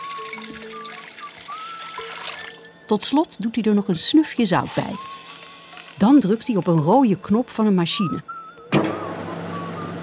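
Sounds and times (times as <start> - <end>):
water pouring into a large tub: 0.0 - 3.0, 4.6 - 6.5
speech: 2.9 - 5.2, 6.0 - 8.3.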